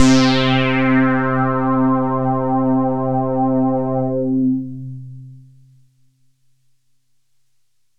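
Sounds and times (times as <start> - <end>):
synthesizer note C: 0.0 - 4.8.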